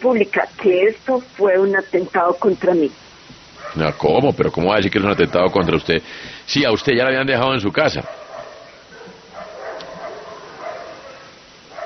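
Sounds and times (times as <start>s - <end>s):
speech: 0.0s - 3.0s, 3.7s - 8.2s
steady hiss: 0.0s - 11.8s
large Rottweiler dog barking and yipping: 3.6s - 4.2s, 7.9s - 11.8s.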